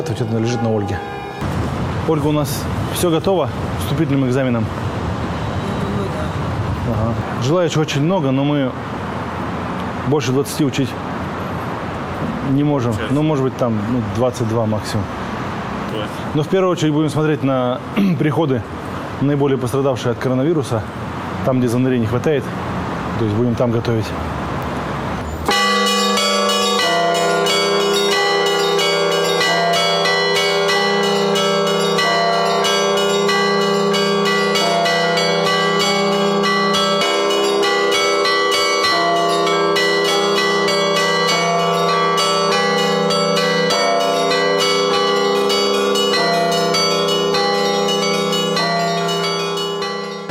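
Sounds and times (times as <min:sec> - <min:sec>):
large church bell in Russia, cast in November 2007, tolling: 0:00.0 - 0:01.5, 0:25.4 - 0:50.3
speech: 0:00.0 - 0:01.5, 0:02.1 - 0:04.9, 0:06.2 - 0:08.9, 0:10.1 - 0:11.1, 0:12.2 - 0:15.2, 0:15.9 - 0:22.6, 0:23.2 - 0:24.3
faint traffic rumble: 0:00.0 - 0:48.7.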